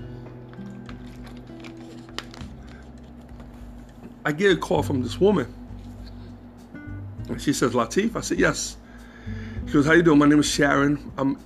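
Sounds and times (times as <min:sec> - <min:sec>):
low steady hum: 0:00.0 - 0:11.4
person drinking water: 0:00.2 - 0:04.2
speech: 0:04.2 - 0:05.6, 0:07.4 - 0:11.4.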